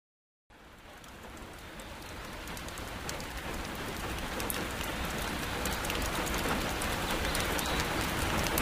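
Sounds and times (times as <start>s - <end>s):
steady rain falling: 0.5s - 8.6s.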